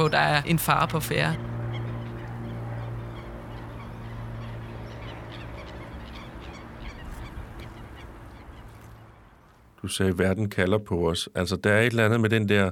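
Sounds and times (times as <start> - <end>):
speech: 0.0 - 1.5, 9.8 - 12.7
flock of birds honking: 0.0 - 9.8
steady low hum: 0.0 - 9.9.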